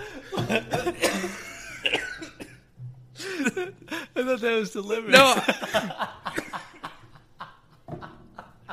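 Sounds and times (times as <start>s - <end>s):
laughter: 0.0s - 2.3s, 5.1s - 8.7s
person coughing in a harsh hacking fit: 0.3s - 2.6s
speech: 0.4s - 1.4s, 4.3s - 6.2s.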